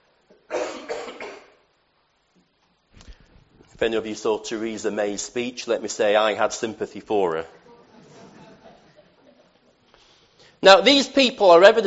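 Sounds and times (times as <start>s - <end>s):
man clearing his throat: 0.5s - 1.6s
speech: 3.8s - 7.6s, 10.6s - 11.8s
laughter: 7.6s - 9.8s.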